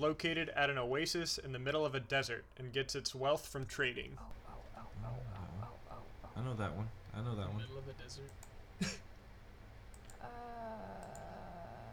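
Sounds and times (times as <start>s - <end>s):
speech: 0.0s - 4.4s, 6.4s - 9.0s
steady low hum: 0.0s - 11.9s
faint computer mouse clicks: 8.3s - 8.6s, 9.9s - 10.2s, 11.0s - 11.3s.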